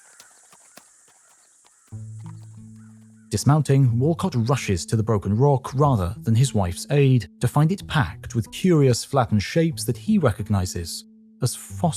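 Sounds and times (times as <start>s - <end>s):
horse hooves stumbling on rocky trail: 0.0s - 3.3s
speech: 3.3s - 11.9s.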